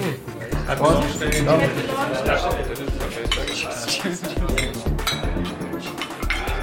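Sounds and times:
people talking: 0.0 - 5.2
glasses clinking in a toast: 1.0 - 1.6, 3.2 - 3.8, 4.5 - 6.6.

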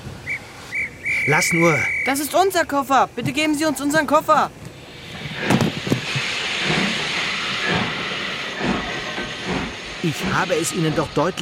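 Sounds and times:
steam train hissing at a station: 0.0 - 11.4
speech: 1.3 - 4.6, 10.0 - 11.4
low heavy steam train rumbles: 3.1 - 11.4.

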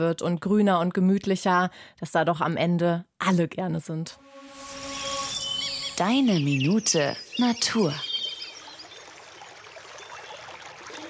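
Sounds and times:
speech: 0.0 - 4.6, 6.0 - 8.1
small brook rushing and babbling: 6.0 - 11.0.

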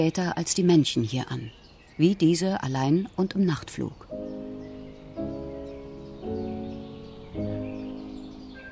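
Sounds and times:
speech: 0.0 - 4.4
female common cuckoo giving bubbling trilled calls: 3.9 - 8.6.

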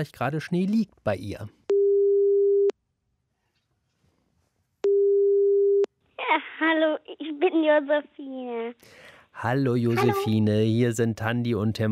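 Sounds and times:
speech: 0.0 - 1.6, 6.3 - 11.9
telephone ringing tone while placing a call: 1.7 - 2.7, 4.8 - 5.9.

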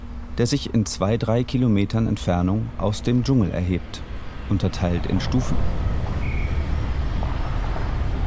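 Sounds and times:
distant heavy machinery rumble: 0.0 - 8.2
faint whine: 0.0 - 8.2
wind: 0.0 - 8.2
speech: 0.4 - 6.0.

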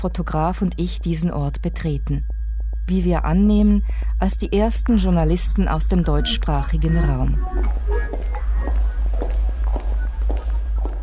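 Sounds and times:
speech: 0.0 - 8.3
constant low hum: 0.0 - 11.0
two people's footsteps on a hard stone floor inside the US Army Center of Military History: 7.4 - 11.0.

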